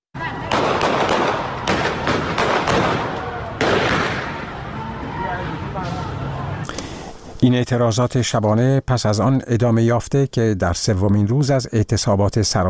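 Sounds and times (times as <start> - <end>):
sharp gunshots during a street protest: 0.5 - 4.6
loud crowd roar and shouting on a busy outdoor street: 2.7 - 6.6
speech: 7.4 - 12.6.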